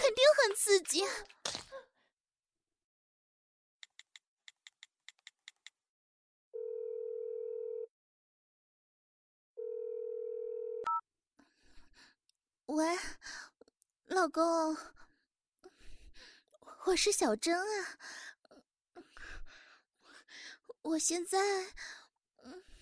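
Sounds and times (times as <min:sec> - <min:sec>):
speech: 0:00.9 - 0:01.4, 0:12.7 - 0:13.4, 0:14.1 - 0:15.0, 0:16.8 - 0:18.3, 0:20.3 - 0:22.7
long steady phone ringing tones: 0:06.6 - 0:07.9, 0:09.6 - 0:11.0
phone keypad beeps: 0:10.8 - 0:11.0.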